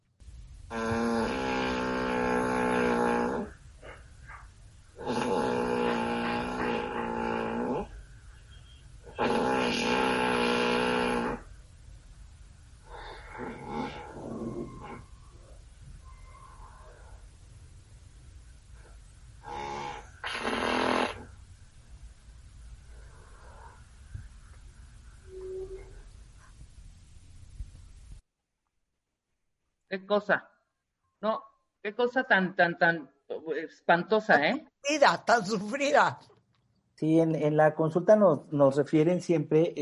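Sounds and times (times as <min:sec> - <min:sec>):
speech: 0:00.7 - 0:01.0, 0:29.9 - 0:30.5, 0:31.2 - 0:36.3, 0:37.0 - 0:39.7
man snoring: 0:00.7 - 0:03.6, 0:05.0 - 0:07.9, 0:09.2 - 0:11.5, 0:19.4 - 0:21.2
irregular breathing: 0:00.8 - 0:08.4, 0:12.8 - 0:17.6, 0:22.7 - 0:25.2.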